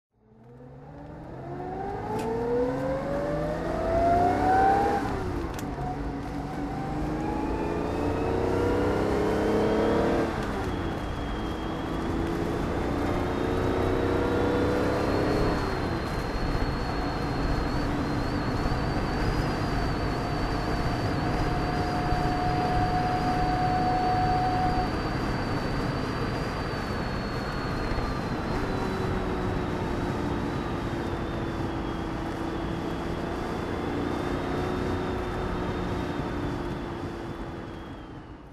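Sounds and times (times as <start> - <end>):
Jaguar E-Type V12 fixed-head coupe engine with manual drive: 0.1 - 38.5.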